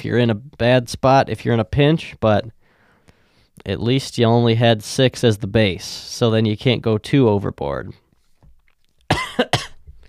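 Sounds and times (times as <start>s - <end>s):
speech: 0.0s - 2.6s, 3.6s - 8.0s
person coughing: 9.1s - 9.8s.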